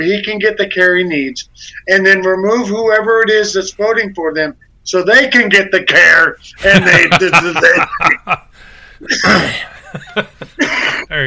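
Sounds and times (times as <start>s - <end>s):
speech: 0.0s - 8.4s, 9.0s - 11.2s
laughter: 6.6s - 11.1s
cough: 9.1s - 9.8s, 10.6s - 11.2s.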